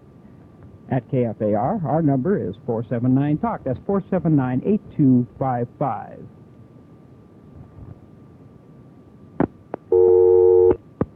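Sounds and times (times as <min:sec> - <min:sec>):
speech: 0:00.9 - 0:06.4
phone line clicks on a failed call: 0:09.4 - 0:10.8
telephone busy signal on a failed call over a phone line: 0:09.9 - 0:10.8.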